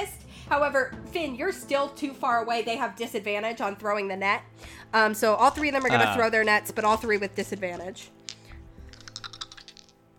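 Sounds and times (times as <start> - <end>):
speech: 0.0 - 8.2
many dice rolling and rattling: 8.3 - 10.1.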